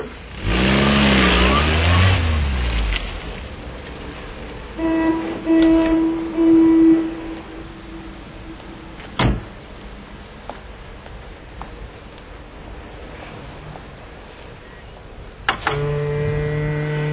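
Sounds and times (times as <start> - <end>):
car engine revving as it drives off: 0.0 - 9.6, 15.5 - 17.1
rumble: 0.0 - 17.1
steady droning tones: 1.3 - 17.1.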